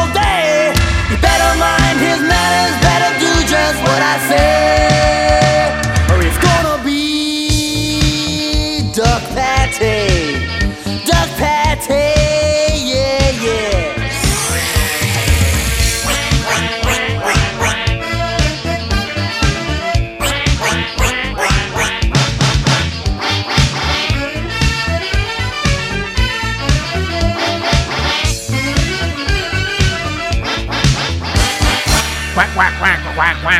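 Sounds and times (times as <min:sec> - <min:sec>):
bouncy parody pop song with full band backing: 0:00.0 - 0:33.5
comic quacking noises mixed into the music: 0:14.1 - 0:18.8, 0:20.2 - 0:24.2, 0:30.4 - 0:33.5.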